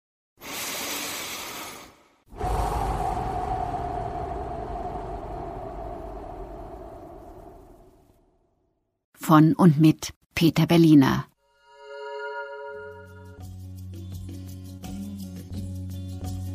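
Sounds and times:
person breathing in and out slowly: 0.4 - 7.7
speech: 9.3 - 11.3.

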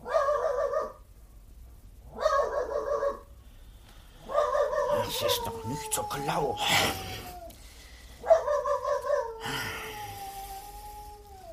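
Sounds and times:
small dog yapping at night: 0.0 - 1.0, 2.1 - 3.2, 4.2 - 5.6, 8.2 - 9.4
speech: 5.2 - 7.2.

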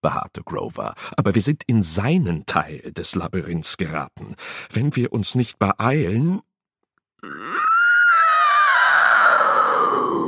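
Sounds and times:
speech: 0.0 - 6.5, 7.2 - 7.7
angry scream echoing down a labyrinth corridor: 7.2 - 10.2.

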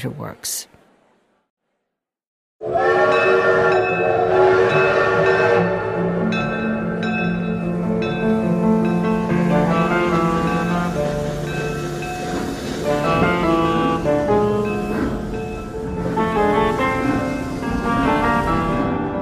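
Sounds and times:
speech: 0.0 - 0.8
train horn blaring while pulling out of a station: 2.6 - 6.4, 7.6 - 19.2.

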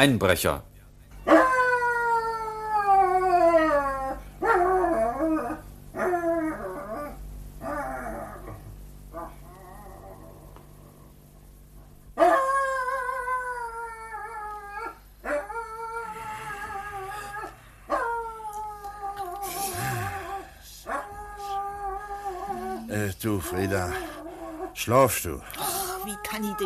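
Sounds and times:
speech: 0.0 - 1.4, 23.5 - 24.1, 24.8 - 26.6
dog barking and yowling at night: 1.2 - 10.4, 12.2 - 19.6, 20.4 - 24.8.

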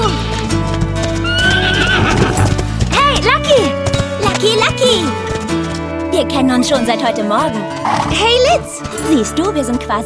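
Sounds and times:
horses galloping along a beach: 0.4 - 5.1, 7.7 - 9.2
horse whinnying: 1.2 - 2.7, 7.8 - 8.2
speech: 6.2 - 10.0.

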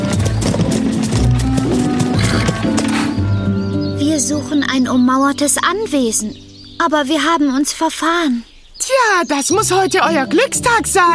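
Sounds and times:
horse-drawn cart rolling: 0.0 - 3.9
horse hooves clip-clopping: 0.0 - 4.2
low sustained musical backdrop: 0.0 - 7.7, 9.5 - 11.1
speech: 4.3 - 11.1.

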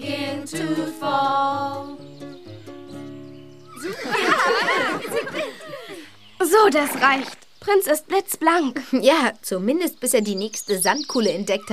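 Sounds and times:
speech: 0.5 - 2.0, 6.5 - 11.7
horse whinnying at a riding stable: 3.7 - 5.0, 6.6 - 7.4
laughter: 3.8 - 6.1.

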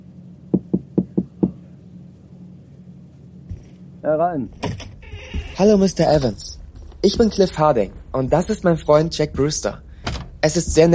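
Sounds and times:
speech: 4.0 - 4.9, 5.6 - 9.8, 10.4 - 10.9
knocking on a wooden office door: 5.1 - 10.9.

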